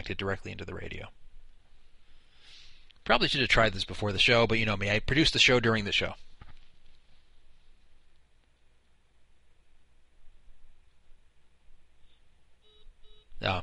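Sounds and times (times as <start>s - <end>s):
steady low hiss: 0.0s - 13.6s
speech: 0.1s - 1.2s, 3.0s - 6.3s, 13.4s - 13.6s
short cell phone dialing beeps: 12.6s - 13.4s.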